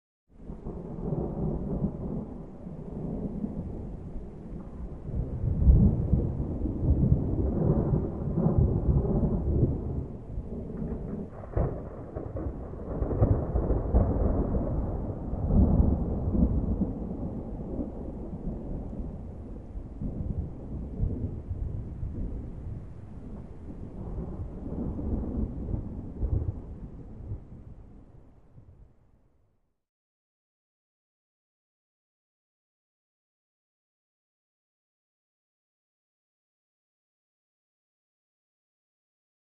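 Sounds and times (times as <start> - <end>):
distant approaching thunder: 0.4 - 28.7.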